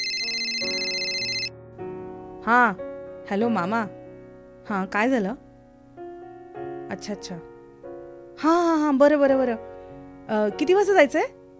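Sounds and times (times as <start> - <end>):
mobile phone ringtone: 0.0 - 1.5
speech: 2.4 - 4.0, 4.7 - 5.4, 6.9 - 7.5, 8.4 - 9.7, 10.3 - 11.4.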